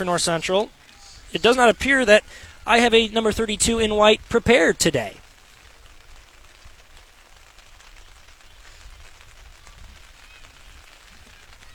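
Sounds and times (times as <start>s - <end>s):
speech: 0.0s - 5.2s
heavy rain spattering a surface: 0.0s - 11.7s.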